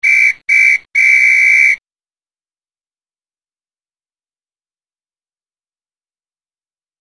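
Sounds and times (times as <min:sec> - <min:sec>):
referee whistle: 0:00.0 - 0:01.8.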